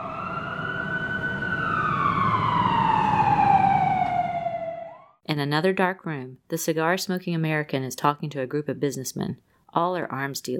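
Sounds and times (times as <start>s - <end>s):
fire truck siren wailing: 0.0s - 5.2s
speech: 5.3s - 10.5s.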